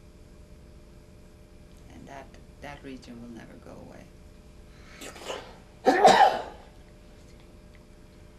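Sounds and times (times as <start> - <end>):
speech: 2.1 - 4.2
person sneezing: 5.0 - 6.7.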